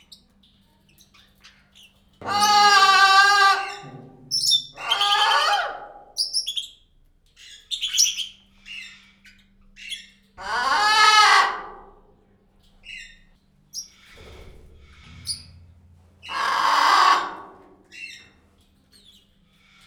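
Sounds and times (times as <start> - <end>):
blue-and-yellow macaw calling at Pécs zoo: 2.2 - 6.8, 9.8 - 11.9, 16.2 - 18.3.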